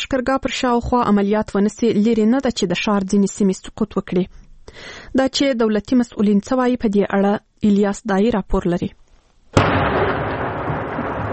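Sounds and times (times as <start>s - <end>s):
speech: 0.1s - 9.7s
artillery cannon fire at night near Lashkar Gah in Helmand: 9.6s - 11.3s
long rolling rumble of artillery cannon fire: 9.6s - 11.3s.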